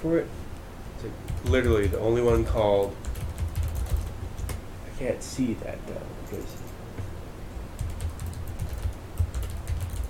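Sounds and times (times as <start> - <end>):
speech: 0.0 - 0.4, 1.0 - 3.1, 5.0 - 6.7
older external computer keyboard typing: 1.3 - 4.6, 7.8 - 10.0.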